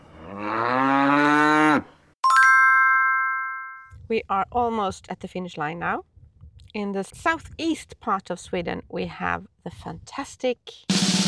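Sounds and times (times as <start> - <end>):
cow mooing on southern Öland in Sweden: 0.0 - 1.9
bright ringing chime: 2.2 - 3.9
speech: 4.1 - 6.1, 6.8 - 11.0.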